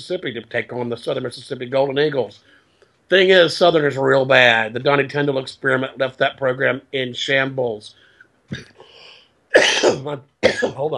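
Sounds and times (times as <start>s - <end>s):
speech: 0.0s - 10.9s
person coughing harshly: 9.5s - 10.9s.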